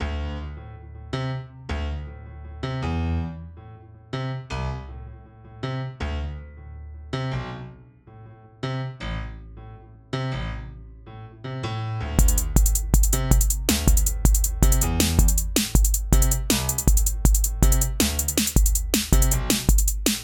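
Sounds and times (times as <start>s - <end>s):
piano: 0.0s - 20.2s
hi-hats: 12.2s - 20.2s.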